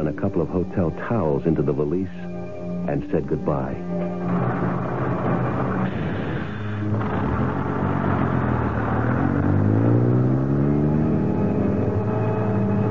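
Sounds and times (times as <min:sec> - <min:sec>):
speech: 0:00.0 - 0:04.5
heavy bus engine rumbling and accelerating on the road: 0:03.0 - 0:12.8
road noise under a bus: 0:03.3 - 0:12.8.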